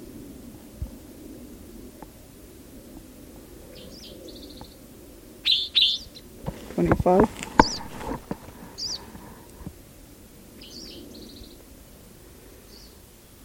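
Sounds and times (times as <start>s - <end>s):
bird chirping: 3.7s - 4.8s, 5.4s - 6.3s, 7.5s - 9.2s, 10.6s - 11.6s, 12.7s - 13.4s
speech: 6.8s - 7.4s.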